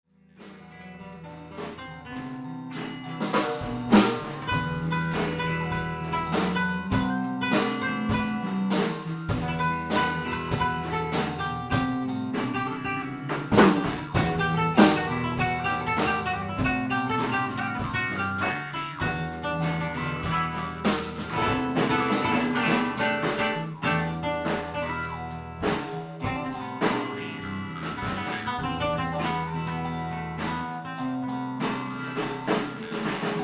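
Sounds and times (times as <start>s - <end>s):
tambour drum: 0.4s - 33.4s.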